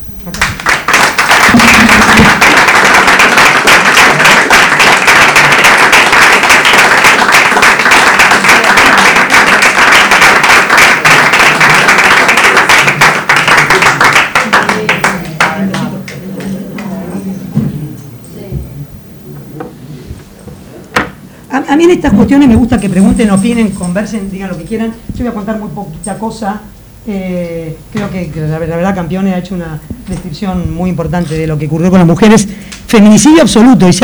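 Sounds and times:
audience applause at a women's presentation event: 0.2s - 17.0s
speech: 21.9s - 34.0s.

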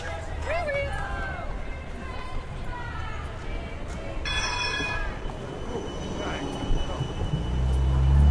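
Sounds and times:
voices of a street demonstration: 0.0s - 7.4s
steady street traffic noise: 0.0s - 8.2s
tram pulling into a tram stop: 0.0s - 8.2s
tram wheels squealing in a high thin tone: 4.0s - 8.2s.

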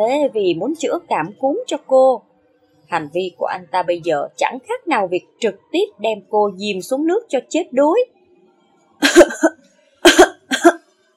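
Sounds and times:
speech: 0.0s - 2.3s, 2.9s - 8.2s, 9.0s - 10.2s
woman coughing after choking on medicine: 9.0s - 10.8s.

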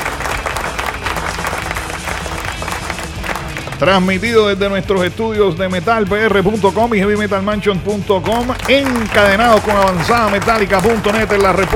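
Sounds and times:
crowd applauding: 0.0s - 4.2s, 8.2s - 11.7s
speech: 3.8s - 11.7s.

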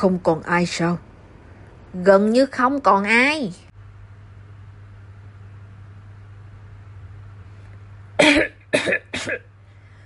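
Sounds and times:
speech: 0.0s - 1.1s, 1.9s - 3.6s, 8.2s - 9.4s
man coughing hard: 8.2s - 9.5s.

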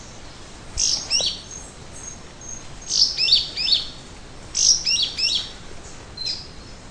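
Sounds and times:
Caryothraustes canadensis yellow-green grosbeak whistled song: 2.0s - 3.9s, 4.6s - 5.5s, 6.2s - 6.5s.

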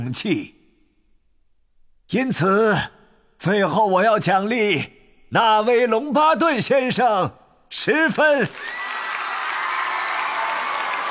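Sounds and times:
speech: 0.0s - 0.6s, 2.1s - 8.8s
crowd cheering at a crowded dining table in a great hall: 8.4s - 11.0s.

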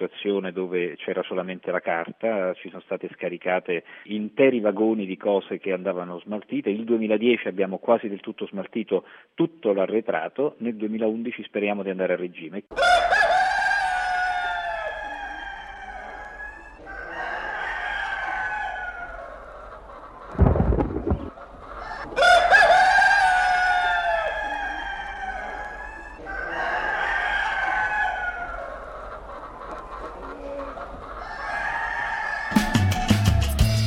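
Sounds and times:
speech: 0.0s - 13.2s
rooster crowing: 12.7s - 19.5s, 21.0s - 28.9s, 30.3s - 33.7s
short heavy burst of noise: 20.3s - 21.3s.

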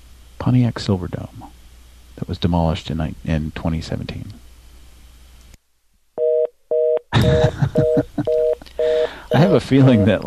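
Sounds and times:
crackling static noise: 0.0s - 10.2s
speech: 0.4s - 1.6s, 2.2s - 4.4s, 7.2s - 8.5s, 9.3s - 10.2s
laughter: 7.2s - 8.7s
touch-tone dialing beeps from a telephone keypad: 7.8s - 10.2s.

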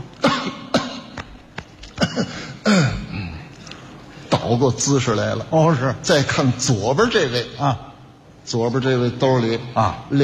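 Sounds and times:
person feigning a cough in a comic stage routine: 0.2s - 1.2s, 1.9s - 3.4s
speech: 4.5s - 10.2s.

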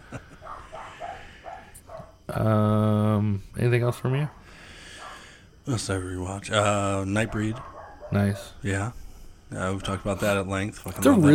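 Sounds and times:
dog barking in short high yaps: 0.4s - 2.1s, 7.3s - 8.6s
speech: 2.4s - 2.8s, 3.4s - 4.4s, 5.6s - 11.3s.

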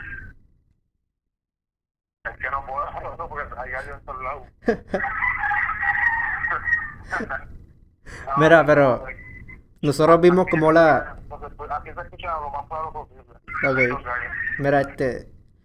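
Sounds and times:
speech: 2.4s - 5.4s, 7.0s - 9.2s, 9.8s - 15.3s
roosters crowing: 4.9s - 7.4s.

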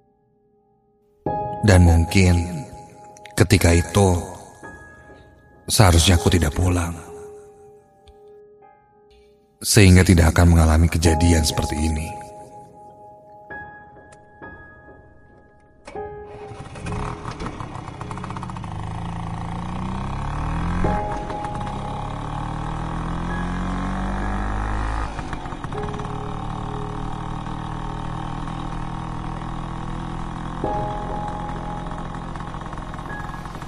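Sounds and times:
speech: 1.6s - 2.6s, 3.4s - 4.3s, 5.7s - 7.1s, 9.6s - 12.2s
motor scooter engine riding through quiet city streets in Bandung at night: 15.9s - 33.6s.

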